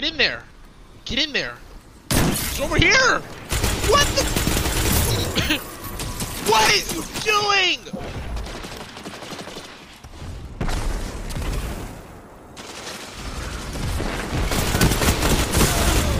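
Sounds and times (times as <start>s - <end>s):
speech: 0.0s - 0.5s, 1.1s - 1.7s, 2.6s - 4.5s, 5.4s - 5.7s, 6.5s - 8.0s
video game hand cannon gunfire: 3.4s - 11.8s, 12.6s - 16.1s.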